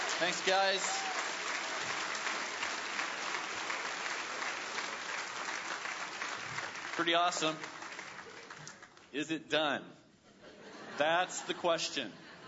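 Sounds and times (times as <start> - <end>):
audience applause for a children's morning performance: 0.0 - 9.1
speech: 0.2 - 1.2, 7.0 - 7.7, 9.1 - 10.0, 11.0 - 12.2.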